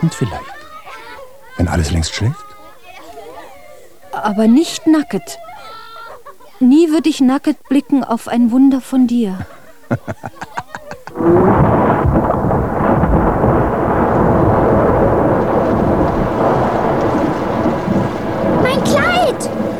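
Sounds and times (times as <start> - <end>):
speech: 0.0 - 0.6, 1.6 - 2.4, 4.2 - 5.4, 6.6 - 10.6, 11.2 - 11.7
heavy ice-cold rain: 0.0 - 0.7, 11.1 - 19.7
laughter: 0.0 - 8.0, 9.3 - 11.3
thunder: 11.1 - 19.7.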